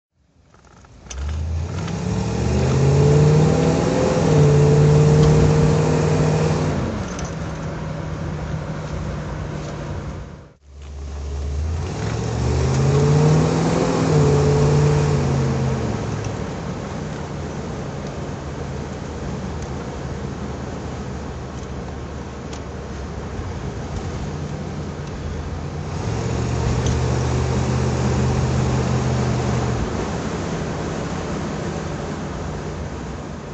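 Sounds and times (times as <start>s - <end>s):
Facel Vega Facel 2 car driving: 0.4s - 33.5s.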